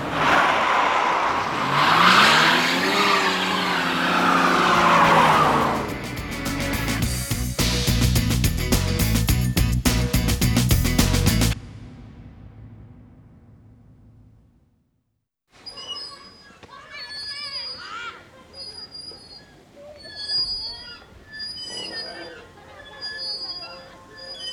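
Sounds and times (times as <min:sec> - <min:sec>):
car tires squealing while skidding in a chase: 0:00.0 - 0:07.0
car engine roar in a chase: 0:00.0 - 0:14.6.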